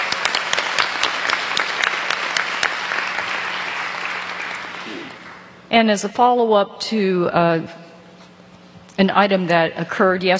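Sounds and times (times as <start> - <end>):
audience applause for a service award: 0.0 - 5.5
speech: 5.7 - 7.8, 9.0 - 10.3.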